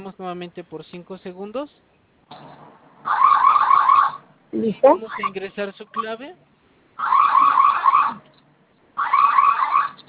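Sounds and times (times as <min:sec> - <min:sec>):
speech: 0:00.0 - 0:03.4, 0:04.5 - 0:07.2
electronic security alarm siren wailing with a rapid warbling tone: 0:03.1 - 0:04.3, 0:07.0 - 0:08.2, 0:09.0 - 0:10.0.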